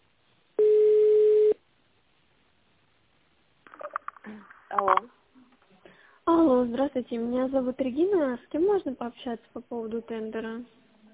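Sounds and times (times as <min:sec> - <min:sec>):
steady electronic tone of a telephone call being transferred to an internal extension: 0:00.6 - 0:01.6
speech: 0:06.4 - 0:10.8.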